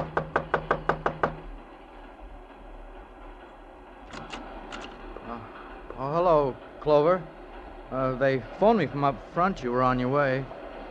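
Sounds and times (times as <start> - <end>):
sharp knocks on a door: 0.0 - 1.5
speech: 6.8 - 10.6.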